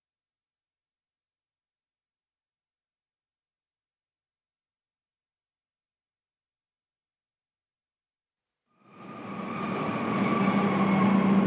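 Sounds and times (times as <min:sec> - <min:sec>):
high-speed ICE train pulling into station: 0:09.0 - 0:11.4.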